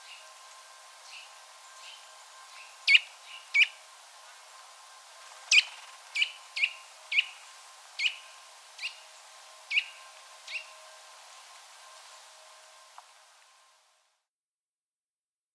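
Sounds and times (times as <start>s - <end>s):
Eurasian nuthatch Sitta europaea chipping: 2.9s - 3.8s, 5.4s - 7.4s, 8.0s - 9.0s.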